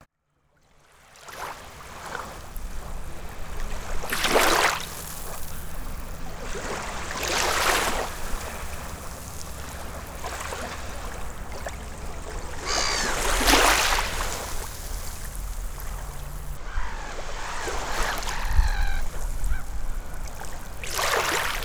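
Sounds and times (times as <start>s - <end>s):
beach ambience: 2.4s - 21.6s.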